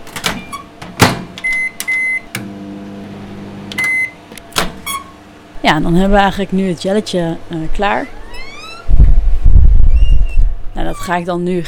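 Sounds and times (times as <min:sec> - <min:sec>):
microwave oven humming: 0:00.0 - 0:11.6
speech: 0:05.6 - 0:08.2, 0:10.8 - 0:11.6.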